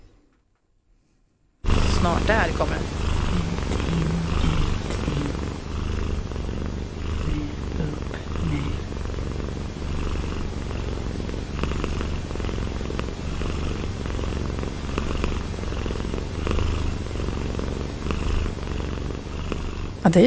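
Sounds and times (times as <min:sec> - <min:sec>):
domestic cat purring: 0:01.6 - 0:20.2
speech: 0:02.0 - 0:03.1, 0:20.1 - 0:20.2.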